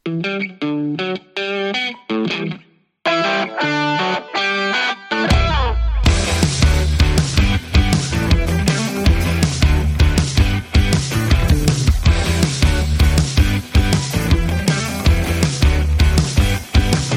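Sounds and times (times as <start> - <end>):
clean effects-laden guitar notes: 0.0 - 17.1
full band with drums: 4.6 - 17.1.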